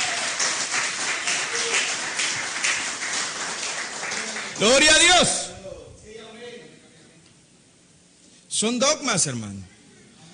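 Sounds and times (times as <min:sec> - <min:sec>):
crowd of people applauding: 0:00.0 - 0:05.4
speech: 0:04.6 - 0:05.4, 0:08.6 - 0:09.7.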